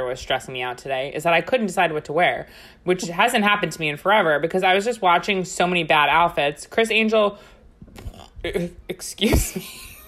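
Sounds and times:
speech: 0.0s - 9.9s
person burping with a short low rumbling belch: 8.0s - 8.8s.

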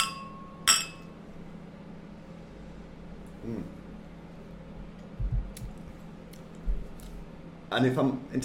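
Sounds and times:
beer glasses of a coffee beer clinking in a toast: 0.0s - 1.1s
speech: 7.7s - 8.4s.

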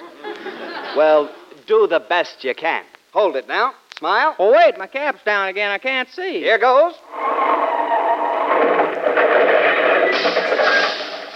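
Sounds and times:
laughter: 0.0s - 1.5s
speech: 1.0s - 7.5s
cars crashing together: 7.1s - 11.3s.

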